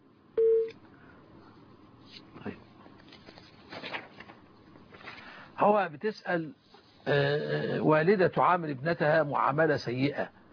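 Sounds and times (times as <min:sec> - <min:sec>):
electronic telephone beep of an incoming call: 0:00.4 - 0:00.7
speech: 0:05.6 - 0:10.4.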